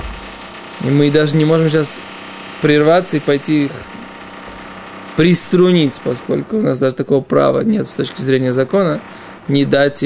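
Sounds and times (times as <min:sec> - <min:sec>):
jackhammer pounding in an adjoining room: 0:00.0 - 0:10.0
speech: 0:00.8 - 0:04.0, 0:05.2 - 0:10.0.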